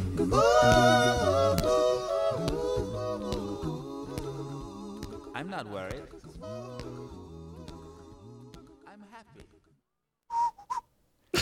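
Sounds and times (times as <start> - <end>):
layered a cappella pop vocal harmonies: 0.0 - 9.7
cheerful whistled melody: 10.3 - 11.0.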